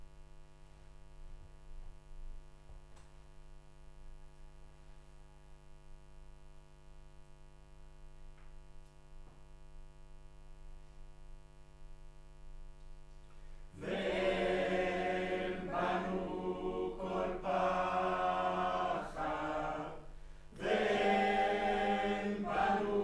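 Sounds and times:
choir singing: 13.8 - 23.0.

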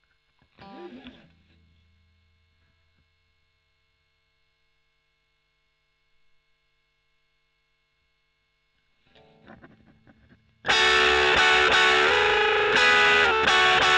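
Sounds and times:
overdriven electric guitar: 0.4 - 1.8, 9.0 - 13.9.

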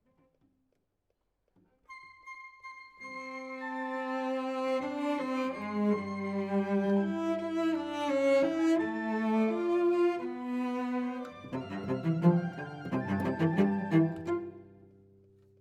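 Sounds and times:
cello solo: 3.0 - 15.0.

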